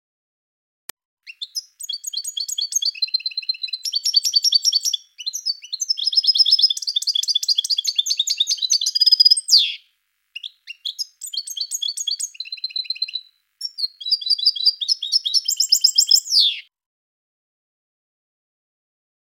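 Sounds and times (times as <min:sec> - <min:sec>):
European goldfinch song: 0:01.3 - 0:16.7.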